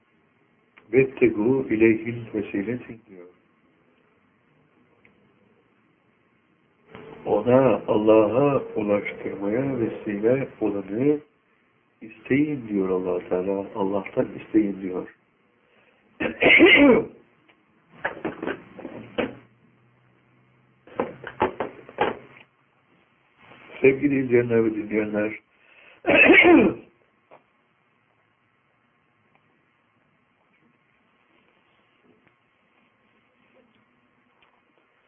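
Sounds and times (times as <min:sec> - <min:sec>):
speech: 0:00.9 - 0:03.4, 0:07.4 - 0:11.3, 0:12.0 - 0:15.2, 0:16.2 - 0:17.2, 0:23.8 - 0:25.4, 0:26.0 - 0:26.8
harsh coughs: 0:16.2 - 0:17.2, 0:26.1 - 0:26.9
throat clearing: 0:16.2 - 0:17.2, 0:26.1 - 0:26.9.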